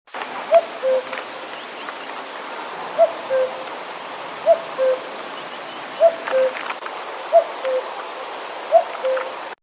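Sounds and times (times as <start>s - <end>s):
Cuculus canorus calling: 0.5s - 2.1s, 3.0s - 3.7s, 4.4s - 6.6s, 7.3s - 8.0s, 8.7s - 9.5s.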